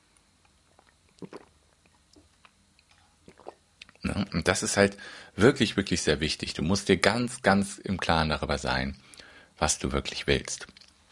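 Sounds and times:
sipping coffee from a cup: 0.7 - 4.0
speech: 1.2 - 1.5, 4.2 - 10.8.

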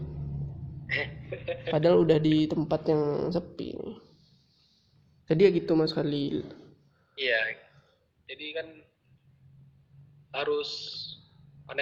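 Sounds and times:
car engine rumble passing by: 0.0 - 2.2
speech: 0.9 - 4.0, 5.3 - 6.6, 7.2 - 7.6, 8.3 - 8.9, 10.3 - 11.1.

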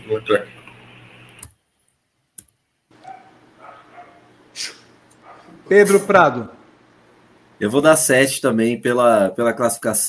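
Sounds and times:
speech: 0.0 - 0.6, 5.7 - 6.6, 7.6 - 10.0
dogs fighting and barking outside: 2.9 - 4.4, 5.2 - 5.6.

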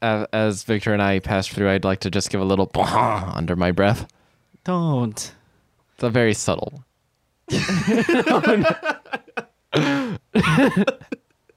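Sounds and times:
speech: 0.0 - 5.4, 6.0 - 6.9, 7.5 - 11.2
laughter: 7.5 - 11.2
person clearing throat: 9.8 - 11.2
person coughing: 9.8 - 11.2.

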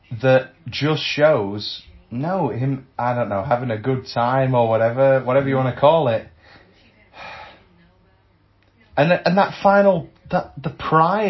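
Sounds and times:
speech: 0.2 - 6.3, 9.0 - 11.2
heavy breath: 6.3 - 7.7.

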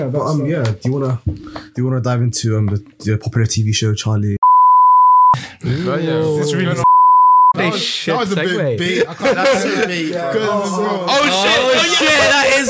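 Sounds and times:
speech: 0.0 - 4.4, 5.6 - 6.9, 7.6 - 12.6
censor bleep tone: 4.4 - 5.4, 6.8 - 7.6
people laughing: 8.3 - 12.6.

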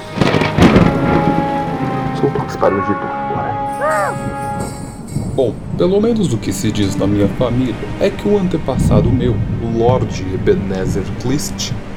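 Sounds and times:
loud thunder crack and rumbling roar: 0.0 - 11.9
steady rain: 0.0 - 11.9
speech: 2.2 - 4.8, 5.4 - 11.9.

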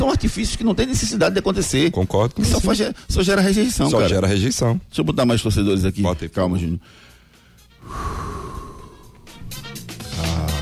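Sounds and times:
speech: 0.0 - 7.1
loud gasp of breath: 6.8 - 9.4
heavy rushing exhalations: 6.8 - 9.6.

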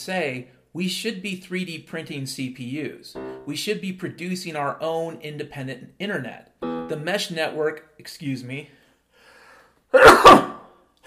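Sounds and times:
speech: 0.0 - 8.8, 9.9 - 10.4
person sneezing: 9.9 - 11.0.

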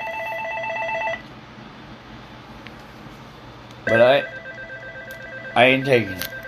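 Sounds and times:
telephone ringing with bright warbling electronic trill: 0.0 - 1.2, 3.9 - 6.4
speech: 3.9 - 4.3, 5.6 - 6.3.

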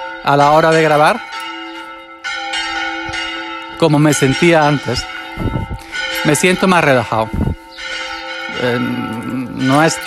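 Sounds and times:
church bells ringing: 0.0 - 10.0
speech: 0.2 - 1.4, 3.8 - 7.4, 8.6 - 10.0.

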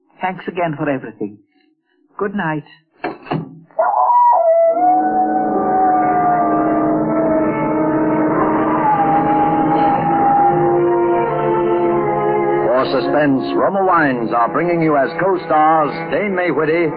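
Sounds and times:
speech: 0.2 - 1.5, 2.2 - 2.8, 12.9 - 16.9
dog howling: 3.8 - 12.8.

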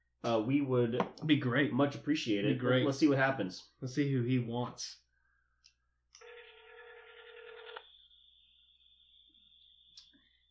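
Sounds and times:
speech: 0.2 - 5.0
steady high phone ringback tone: 6.2 - 8.2.

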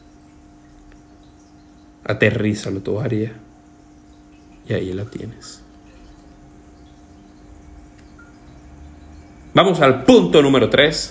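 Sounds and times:
aquarium water trickling: 0.0 - 11.0
faint low hum: 0.0 - 11.0
speech: 2.1 - 3.5, 4.7 - 5.6, 9.6 - 11.0
soft drip-like blip: 4.1 - 9.5.

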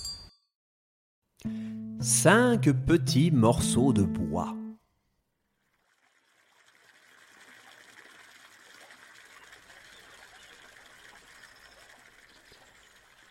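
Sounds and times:
speech: 1.4 - 4.6
river water flowing: 5.6 - 13.3.

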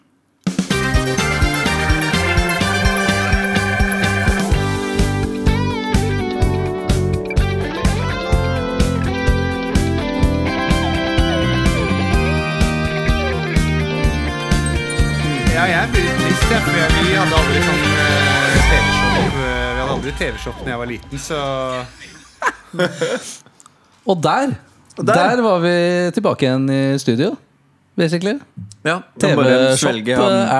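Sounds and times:
instrumental podcast intro jingle played from tape: 0.5 - 22.5
laughter: 15.6 - 18.9, 21.7 - 23.4
speech: 16.5 - 18.1, 20.1 - 27.4, 28.0 - 30.5.

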